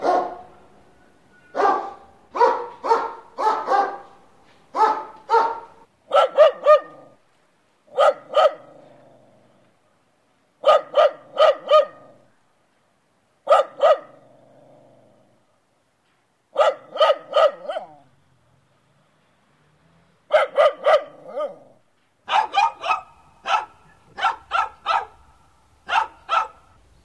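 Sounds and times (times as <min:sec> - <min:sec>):
dog barking: 0:00.0 - 0:00.6, 0:01.5 - 0:07.2, 0:07.9 - 0:08.8, 0:10.6 - 0:12.2, 0:13.4 - 0:14.2, 0:16.6 - 0:18.1, 0:20.3 - 0:25.2, 0:25.8 - 0:26.8.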